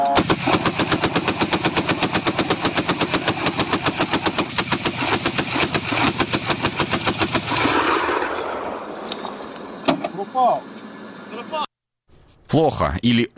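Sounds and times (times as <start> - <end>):
anti-aircraft cannon firing at drones: 0.2 - 8.9
speech: 12.5 - 13.3.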